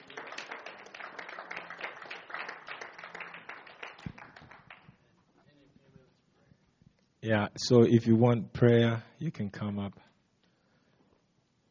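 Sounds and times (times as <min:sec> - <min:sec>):
audience clapping: 0:00.0 - 0:05.1
speech: 0:07.2 - 0:10.0.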